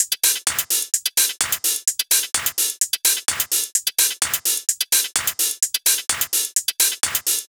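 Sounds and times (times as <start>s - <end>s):
house hi-hat drum loop: 0.0s - 7.4s.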